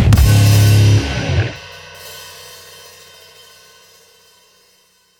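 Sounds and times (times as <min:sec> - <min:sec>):
level-up stinger text message tone: 0:00.2 - 0:01.6.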